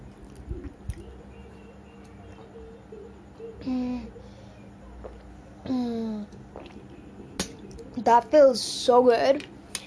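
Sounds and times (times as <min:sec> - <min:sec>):
person gulping water: 0:06.5 - 0:06.9
speech: 0:08.0 - 0:09.5.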